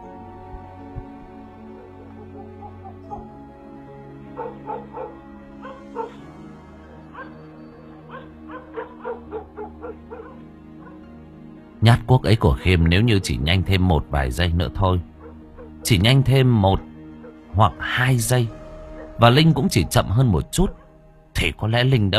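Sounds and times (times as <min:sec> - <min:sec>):
yellow dog barking and whimpering on a porch at night: 0:04.3 - 0:06.3, 0:07.0 - 0:11.0, 0:15.2 - 0:15.8, 0:17.2 - 0:17.5, 0:20.6 - 0:21.0
speech: 0:11.8 - 0:15.1, 0:15.8 - 0:16.9, 0:17.6 - 0:18.6, 0:19.2 - 0:20.8, 0:21.4 - 0:22.1.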